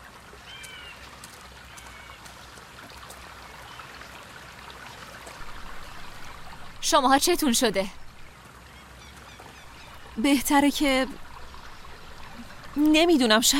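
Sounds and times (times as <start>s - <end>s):
river stream flowing: 0.0s - 13.5s
speech: 6.9s - 8.0s, 10.2s - 11.2s, 12.8s - 13.5s.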